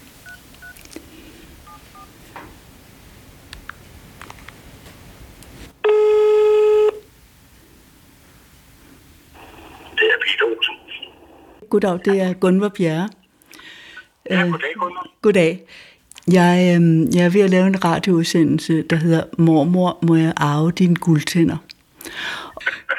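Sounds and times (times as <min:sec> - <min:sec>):
telephone ringing tone during an outgoing call: 0:05.8 - 0:07.0
speech: 0:11.7 - 0:13.2, 0:14.3 - 0:22.8.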